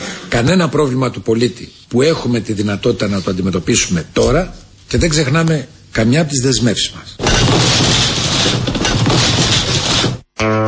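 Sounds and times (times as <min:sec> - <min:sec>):
speech: 0:00.3 - 0:08.1
building collapsing crash: 0:07.2 - 0:10.3.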